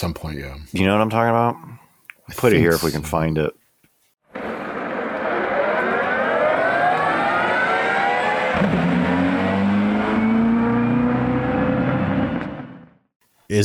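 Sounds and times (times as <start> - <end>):
speech: 0.0 - 3.6, 13.5 - 13.6
hybrid race car whirring up to speed leaving the pits: 4.4 - 13.0.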